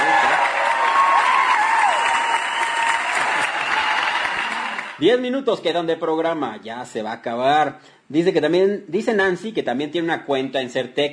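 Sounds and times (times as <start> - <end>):
studio audience applause: 0.0 - 5.0
speech: 5.0 - 11.1.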